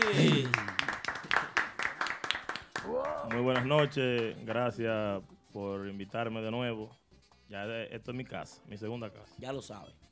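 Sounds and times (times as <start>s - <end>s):
few people clapping to welcome a guest: 0.0s - 4.8s
speech: 0.1s - 0.7s, 3.3s - 10.0s.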